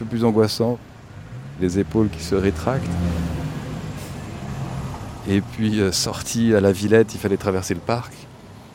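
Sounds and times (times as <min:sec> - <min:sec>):
heavy road traffic on major roads at night: 0:00.0 - 0:08.7
speech: 0:00.1 - 0:00.9, 0:01.6 - 0:03.3, 0:05.2 - 0:08.3
air brake hiss: 0:04.0 - 0:04.3.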